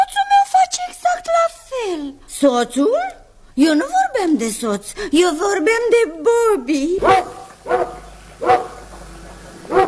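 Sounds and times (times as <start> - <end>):
faint hum: 0.0 - 9.8
speech: 2.4 - 8.6
dog barking: 7.0 - 8.9, 9.7 - 9.8.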